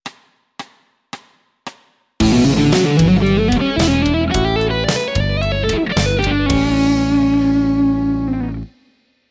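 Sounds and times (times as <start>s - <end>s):
slow one-minute musical lick: 2.2s - 8.8s.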